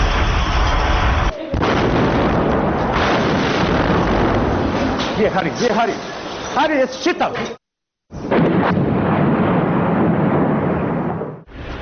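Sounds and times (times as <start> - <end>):
heavy artillery fire from massed guns: 0.0 - 5.1, 8.2 - 11.5
speech: 5.2 - 7.6.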